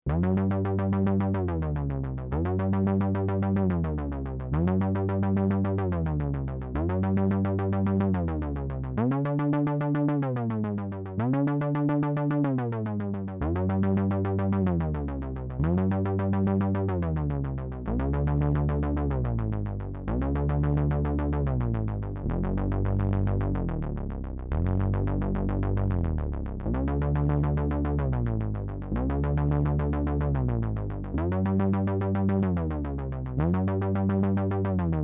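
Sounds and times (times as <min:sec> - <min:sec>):
MS20 bass: 0:00.0 - 0:35.0.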